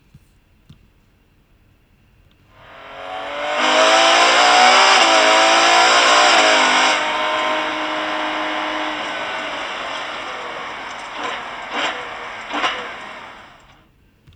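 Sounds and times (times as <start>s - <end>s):
Ferrari 812 Superfast shifting gears onboard: 2.6s - 13.8s.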